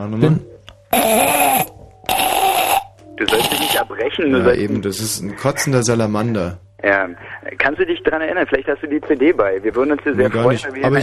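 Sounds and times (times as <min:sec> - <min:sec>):
speech: 0:00.0 - 0:01.7, 0:03.2 - 0:11.0
voice imitating squeaking wheel of a donkey cart on a bumpy road: 0:00.9 - 0:03.9.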